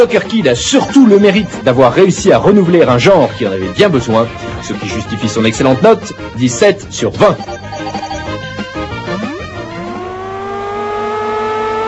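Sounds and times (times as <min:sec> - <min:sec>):
speech: 0:00.0 - 0:08.0
Formula One racing car engine from a Mega Drive video game: 0:08.9 - 0:11.8.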